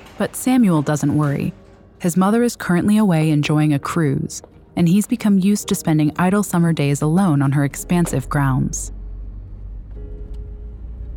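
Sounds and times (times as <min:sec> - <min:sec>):
speech: 0:00.2 - 0:09.0
car engine rumbling while driving slowly into a garage: 0:07.0 - 0:11.1.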